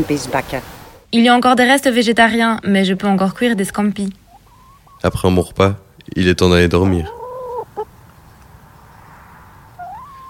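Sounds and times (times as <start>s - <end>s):
speech: 0.0s - 4.2s, 5.0s - 7.2s
low steady noise: 0.0s - 10.2s
hens clucking in the morning: 3.0s - 10.2s.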